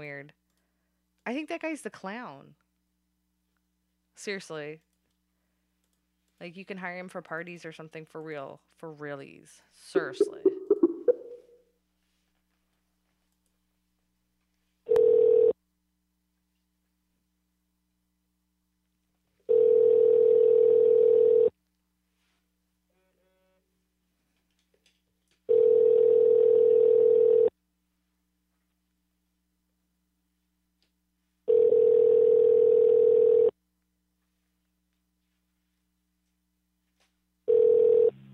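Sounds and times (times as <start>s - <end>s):
speech: 1.3s - 2.6s, 4.2s - 4.9s, 6.4s - 10.5s
phone line ringing out with a steady tone: 14.9s - 15.6s, 19.5s - 21.5s, 25.5s - 27.5s, 31.5s - 33.5s, 37.5s - 38.3s.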